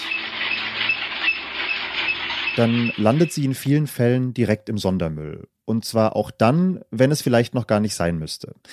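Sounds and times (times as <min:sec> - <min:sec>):
broken washing machine grinding and scraping: 0:00.0 - 0:03.7
speech: 0:02.6 - 0:08.7.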